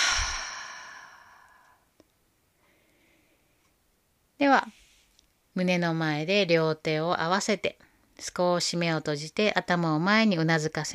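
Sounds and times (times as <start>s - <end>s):
slow breath in through the nose and out through the mouth during yoga nidra: 0.0s - 1.9s, 2.6s - 3.7s
speech: 4.4s - 4.8s, 5.6s - 10.9s.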